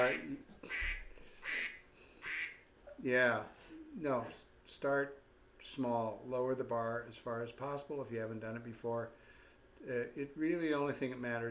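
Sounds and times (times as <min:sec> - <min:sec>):
speech: 0:00.0 - 0:00.8, 0:03.0 - 0:09.2, 0:09.8 - 0:11.5
duck quacking: 0:00.0 - 0:02.6.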